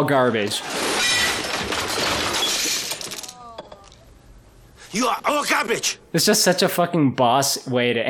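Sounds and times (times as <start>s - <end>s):
speech: 0.0s - 2.1s, 4.9s - 8.0s
debris clinking and rattling as it settles: 0.6s - 3.9s
stereo being smashed apart: 0.6s - 4.0s.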